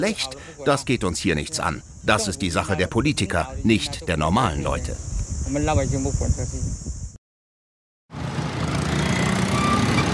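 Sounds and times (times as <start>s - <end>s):
speech: 0.0s - 6.8s
excavator engines at a construction site: 8.2s - 10.1s.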